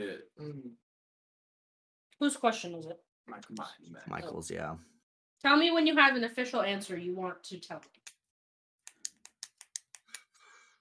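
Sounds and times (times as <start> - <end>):
speech: 2.2 - 8.0
pen clicking: 8.9 - 10.2.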